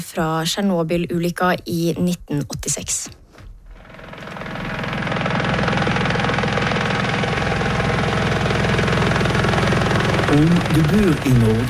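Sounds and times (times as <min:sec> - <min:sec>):
speech: 0:00.0 - 0:03.2, 0:10.3 - 0:11.6
helicopter rotor thumping: 0:01.0 - 0:11.6
helicopter engine roar: 0:03.7 - 0:11.6.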